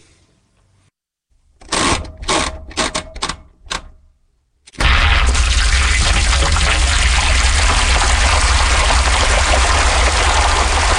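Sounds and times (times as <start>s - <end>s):
sharp mechanical clicks and clunks of a washing machine: 1.6s - 4.0s
washing machine filling with water: 5.1s - 10.9s.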